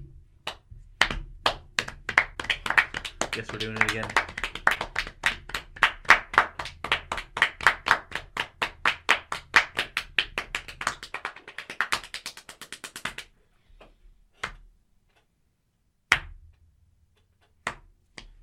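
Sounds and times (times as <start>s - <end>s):
single pair of hands clapping: 0.4s - 13.4s, 17.4s - 18.4s
speech: 3.4s - 4.4s.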